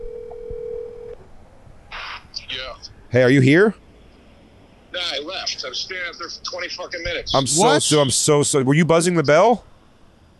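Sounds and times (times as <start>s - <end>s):
telephone tone: 0.0s - 1.2s
speech: 2.7s - 3.8s, 5.0s - 9.7s.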